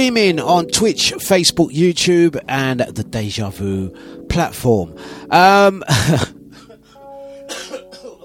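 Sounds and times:
speech: 0:00.0 - 0:06.2
person coughing harshly: 0:05.9 - 0:08.2.

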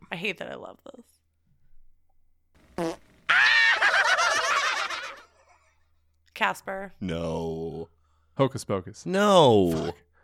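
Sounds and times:
speech: 0:00.2 - 0:01.1, 0:06.4 - 0:10.1
fart: 0:02.7 - 0:03.3
laughter: 0:03.3 - 0:05.6.

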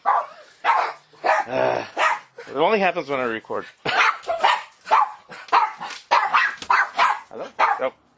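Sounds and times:
dog barking at a package delivery: 0:00.0 - 0:02.3, 0:03.9 - 0:08.0
speech: 0:01.5 - 0:02.0, 0:02.6 - 0:04.0, 0:07.8 - 0:08.0.

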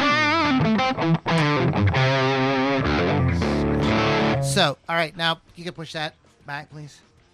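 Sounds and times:
heavily distorted electric guitar through an amp playing sustained gritty chords: 0:00.0 - 0:04.8
speech: 0:04.6 - 0:07.1.

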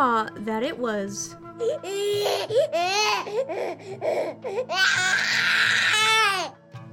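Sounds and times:
speech: 0:00.0 - 0:06.6
newborn baby crying: 0:01.5 - 0:06.6.

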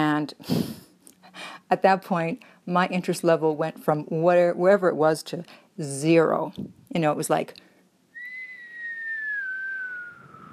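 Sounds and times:
speech: 0:00.2 - 0:07.6
person whistling a single long shaky note: 0:08.2 - 0:10.5.

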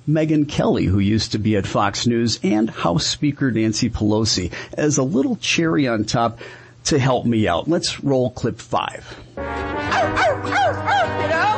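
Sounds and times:
speech: 0:00.1 - 0:11.0
woman imitating a dog barking: 0:09.9 - 0:11.5.

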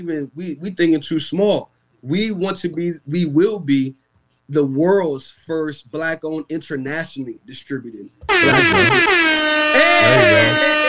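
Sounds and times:
speech: 0:00.0 - 0:10.8
air horn sound effect blaring: 0:08.3 - 0:10.8.

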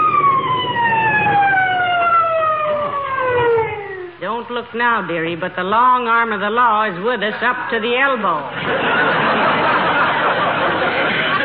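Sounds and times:
siren wailing: 0:00.0 - 0:05.4
faint traffic rumble: 0:00.0 - 0:11.4
speech: 0:04.4 - 0:09.4
laughter: 0:08.5 - 0:11.4.

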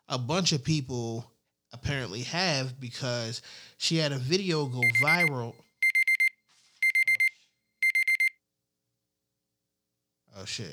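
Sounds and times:
speech: 0:00.1 - 0:05.6, 0:10.4 - 0:10.7
digital alarm clock beeping with high-pitched tones: 0:04.8 - 0:08.4.

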